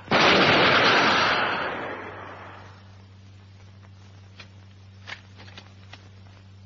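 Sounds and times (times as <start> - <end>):
gunfire volley in battle: 0.1 - 2.8.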